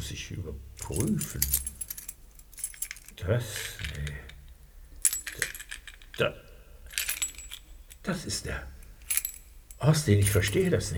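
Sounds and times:
speech: 0.0 - 1.7, 3.2 - 4.3, 6.2 - 6.4, 8.0 - 8.7, 9.8 - 10.9
bunch of keys jangling and clinking: 0.8 - 6.2, 6.9 - 8.1, 8.8 - 10.7.

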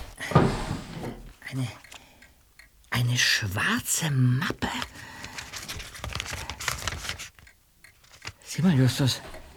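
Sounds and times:
desk drawer being opened: 0.3 - 1.3
speech: 1.6 - 1.8, 3.1 - 5.2, 8.6 - 9.3.

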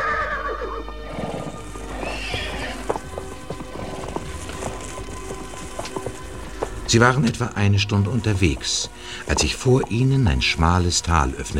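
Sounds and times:
horse whinnying: 0.0 - 6.2
horse hooves clip-clopping: 0.9 - 11.5
horse snorting: 1.0 - 10.2
low rumbling background: 1.5 - 11.5
speech: 6.9 - 11.5.

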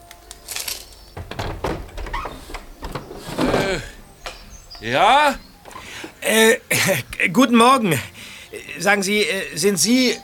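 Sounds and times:
window latch and frame knocks: 1.2 - 6.2
creaky squeal of window hinges: 1.2 - 6.3
window of a house being opened: 1.2 - 6.4
speech: 4.8 - 5.5, 6.2 - 8.1, 8.8 - 10.2.

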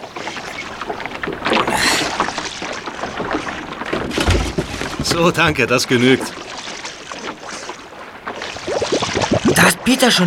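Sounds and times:
water sloshing against the hull of a small boat: 0.0 - 10.2
hollow knocks on a small boat as someone clambers in: 3.2 - 6.4
speech: 5.2 - 6.4, 9.8 - 10.2.

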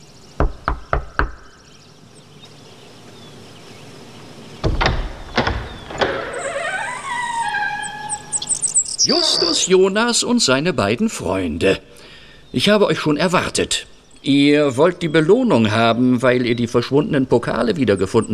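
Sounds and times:
quick firm knocking on a door: 0.4 - 1.4, 4.6 - 6.2
door clunking and creaking open: 4.6 - 9.7
speech: 9.0 - 18.3.

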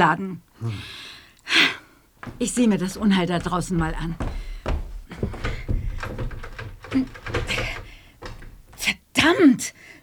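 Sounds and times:
speech: 0.0 - 4.4, 6.9 - 7.2, 9.3 - 9.9
stuck door being yanked and rattled: 2.2 - 8.9.

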